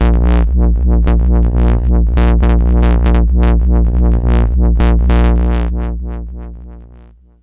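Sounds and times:
overloaded unstable synth bass on A sharp 1: 0:00.0 - 0:07.4.

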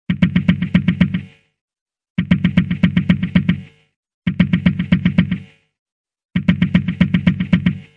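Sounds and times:
drum loops: 0:00.1 - 0:01.4, 0:02.2 - 0:03.7, 0:04.3 - 0:05.6, 0:06.4 - 0:07.9.

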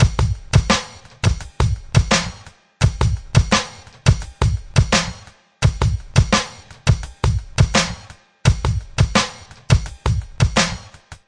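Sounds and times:
hammer crunch drum beat at 85 bpm: 0:00.0 - 0:11.2.

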